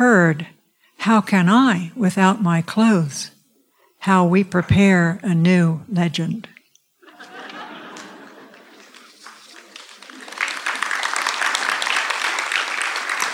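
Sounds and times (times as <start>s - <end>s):
speech: 0.0s - 3.4s, 4.0s - 6.5s
faint laughter: 7.0s - 10.4s
audience clapping: 7.8s - 13.3s.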